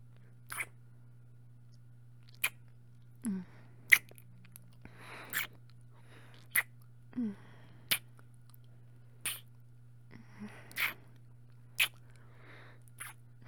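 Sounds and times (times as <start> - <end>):
wet smacking kisses: 0.5 - 0.7, 2.3 - 2.6, 3.9 - 4.2, 5.3 - 5.6, 6.4 - 6.7, 9.2 - 9.5, 10.7 - 11.0, 11.8 - 12.0, 13.0 - 13.2.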